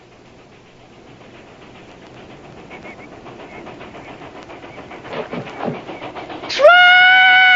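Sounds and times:
rumbling, rattling train track noise: 0.0 - 7.5
train whistle of an approaching train near a railroad bridge: 6.5 - 7.5.

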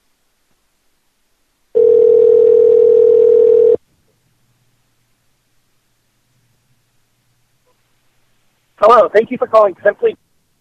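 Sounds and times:
telephone line tone while placing a call: 1.8 - 3.8
speech: 8.9 - 10.2.

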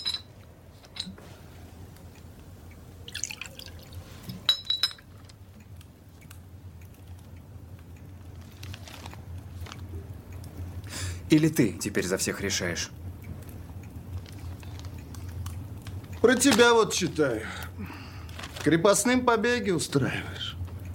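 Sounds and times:
glass clinks: 0.0 - 0.3, 4.5 - 5.1
low steady hum: 0.0 - 20.9
homemade fruit liqueur poured into a glass: 3.0 - 4.4
speech: 11.3 - 13.0, 16.3 - 18.0, 18.6 - 20.5.

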